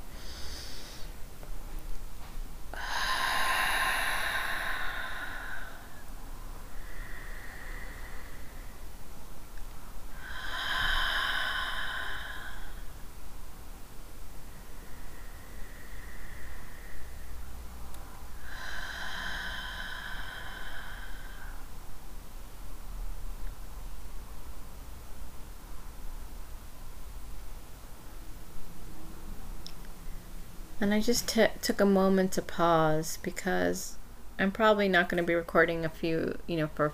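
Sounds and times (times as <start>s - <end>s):
deep diaphragmatic breaths during a guided breathing exercise: 0.0s - 1.3s, 2.7s - 9.2s, 10.1s - 13.1s, 14.5s - 22.0s
steady hiss: 0.0s - 36.9s
speech: 30.8s - 36.9s.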